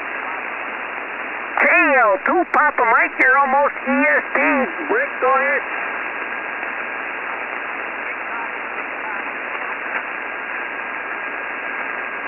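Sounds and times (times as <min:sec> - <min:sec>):
dense shortwave radio static: 0:00.0 - 0:12.2
very faint ham radio voice transmission: 0:01.6 - 0:05.8, 0:07.1 - 0:10.2
speech: 0:02.0 - 0:05.9.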